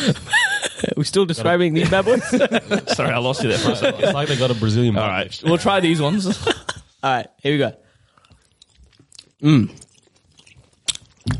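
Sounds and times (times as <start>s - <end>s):
laughter: 0.0s - 1.0s, 1.6s - 6.9s
speech: 0.0s - 7.8s, 9.4s - 9.8s
juicy red fruit-flavoured lolly bitten with a wet crunch: 8.2s - 11.3s.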